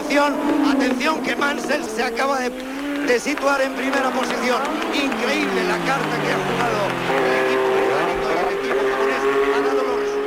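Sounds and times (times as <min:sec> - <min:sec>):
racing car engines roaring past during the Spanish Grand Prix: 0:00.0 - 0:10.2
speech: 0:00.2 - 0:07.5.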